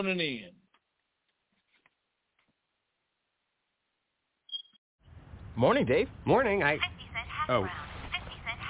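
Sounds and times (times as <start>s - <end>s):
speech: 0.0s - 0.6s, 5.6s - 7.8s
phone alert tone in short bright electronic chirps: 4.5s - 4.8s.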